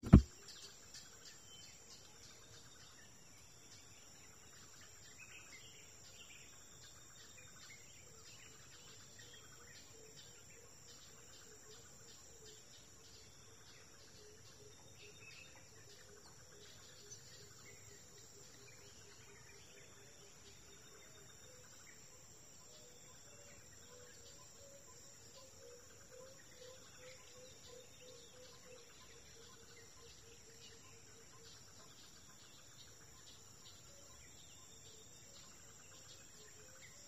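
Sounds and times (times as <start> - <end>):
forest ambience at dawn in Kuma Apoti Togo: 0.0 - 37.0.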